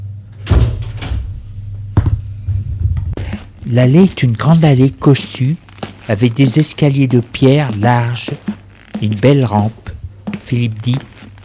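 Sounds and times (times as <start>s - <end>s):
steady low hum: 0.0s - 11.4s
heavy apartment building door opening with a metallic clunk: 0.3s - 3.1s
speech: 3.7s - 9.8s, 10.5s - 11.1s.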